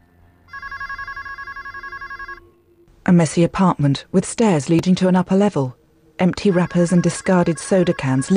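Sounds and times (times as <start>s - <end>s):
low hum: 0.0s - 8.3s
telephone ringing in a computer room: 0.5s - 2.6s, 6.2s - 8.3s
speech: 3.1s - 8.3s.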